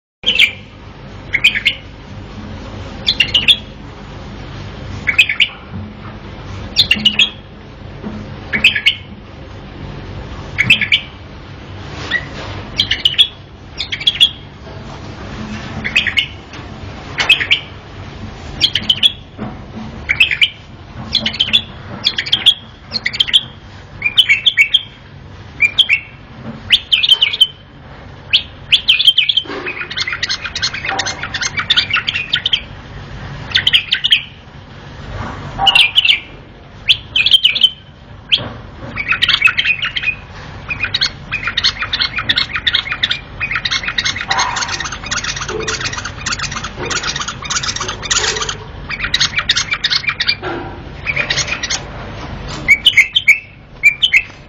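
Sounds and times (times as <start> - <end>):
bulbul singing: 0.2 - 2.0, 3.0 - 3.8, 5.0 - 5.7, 6.7 - 7.6, 8.5 - 9.2, 10.5 - 11.3, 12.1 - 14.6, 15.8 - 17.8, 18.6 - 19.4, 20.0 - 32.8, 33.4 - 34.4, 35.6 - 51.9, 52.5 - 54.4.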